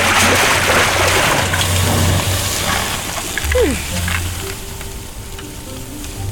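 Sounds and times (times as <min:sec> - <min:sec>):
water pouring from a huge bucket onto someone's head: 0:00.0 - 0:04.6.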